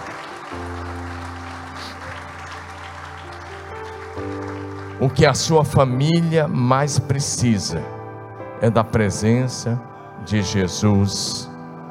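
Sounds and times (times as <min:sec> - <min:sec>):
audience applauding: 0:00.0 - 0:05.8
sustained keyboard chords: 0:00.0 - 0:11.8
speech: 0:04.2 - 0:08.0, 0:08.6 - 0:11.8.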